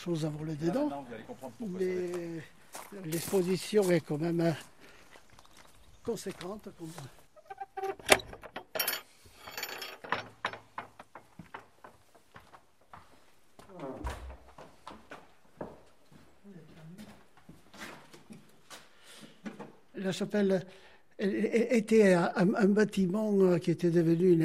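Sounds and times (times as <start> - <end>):
speech: 0.0 - 4.7, 6.0 - 7.2, 20.0 - 24.4
key worked into the door lock of a chapel: 7.8 - 9.0.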